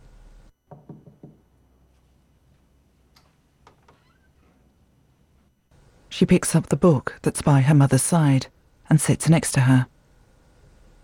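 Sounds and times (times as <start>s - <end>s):
knocking on a bedroom door: 0.7s - 1.5s
speech: 6.2s - 9.9s.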